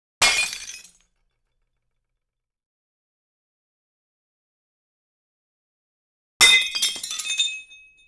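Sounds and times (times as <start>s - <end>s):
small glass foley effects: 6.4s - 8.0s.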